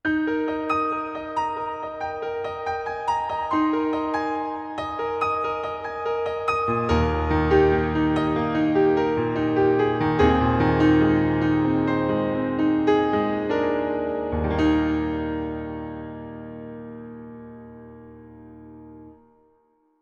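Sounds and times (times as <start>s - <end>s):
acoustic piano in a hall: 0.0s - 19.5s.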